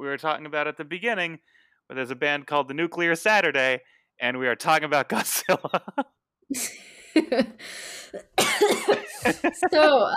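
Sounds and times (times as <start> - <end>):
speech: 0.0 - 10.1
laughter: 5.1 - 6.0, 8.6 - 10.1
person coughing harshly: 8.2 - 9.9.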